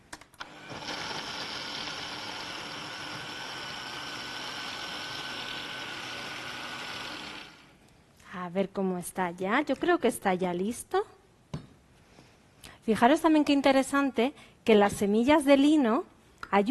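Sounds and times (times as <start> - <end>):
blender pureeing pancake batter with flax seeds: 0.4 - 7.7
speech: 8.5 - 11.1, 12.9 - 16.6.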